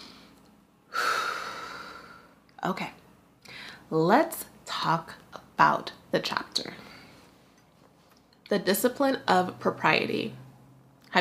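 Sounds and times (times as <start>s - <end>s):
deep breath: 0.0s - 2.4s, 3.4s - 3.8s
speech: 2.6s - 3.0s, 3.9s - 6.9s, 8.5s - 10.4s.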